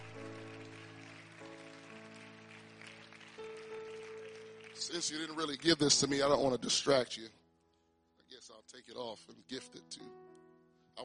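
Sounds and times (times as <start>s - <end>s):
crowd applauding in praise: 0.0s - 6.6s
speech: 4.8s - 7.4s, 8.8s - 10.2s.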